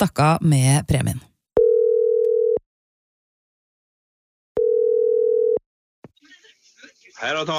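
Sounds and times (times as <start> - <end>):
speech: 0.0 - 1.3, 7.2 - 7.5
phone ringing tone while calling: 1.6 - 2.6, 4.6 - 5.6.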